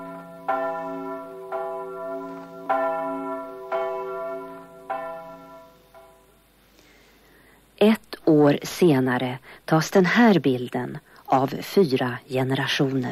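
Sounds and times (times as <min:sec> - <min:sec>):
church bells across Sweden ringing in the peace: 0:00.0 - 0:06.3
speech: 0:07.8 - 0:13.0.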